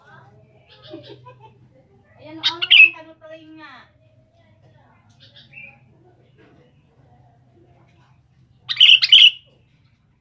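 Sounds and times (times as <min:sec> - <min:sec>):
sooty-headed bulbul giving a bubbly phrase of chirping notes: 0:08.7 - 0:09.5.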